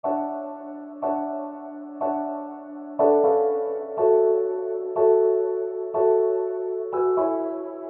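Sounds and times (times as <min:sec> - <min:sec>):
RnB piano melody loop in F minor: 0:00.0 - 0:07.8.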